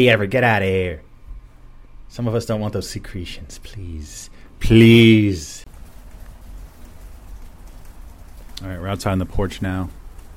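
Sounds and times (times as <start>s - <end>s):
speech: 0.0s - 1.1s, 2.1s - 5.6s, 8.6s - 10.0s
steady rain on hard surfaces on a porch: 5.7s - 10.3s.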